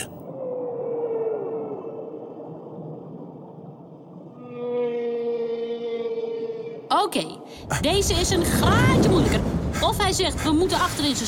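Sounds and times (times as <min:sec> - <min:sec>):
rumbling undersea backdrop: 0:00.0 - 0:11.2
whale call moaning through the water: 0:00.2 - 0:03.3, 0:04.2 - 0:06.9
speech: 0:06.9 - 0:11.2.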